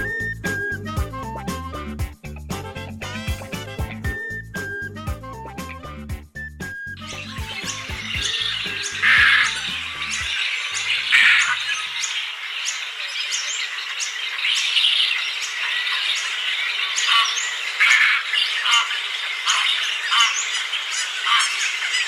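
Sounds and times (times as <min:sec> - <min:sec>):
music: 0:00.0 - 0:11.3
mass ibis breeding colony squawking: 0:07.0 - 0:13.7, 0:15.1 - 0:22.0.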